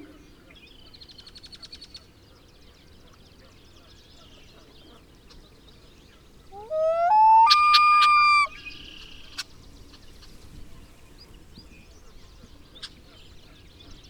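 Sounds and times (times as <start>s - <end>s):
common loon (Gavia immer) wailing: 6.6s - 8.5s.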